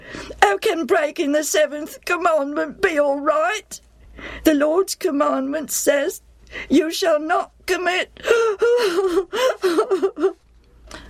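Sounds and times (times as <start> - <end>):
speech: 0.6 - 10.4
man sobbing deeply: 8.2 - 10.4.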